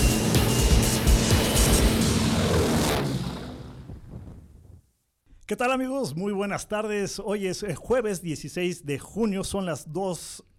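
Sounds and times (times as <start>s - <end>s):
airplane engine roar beginning its takeoff run: 0.0s - 4.7s
speech: 5.5s - 10.5s.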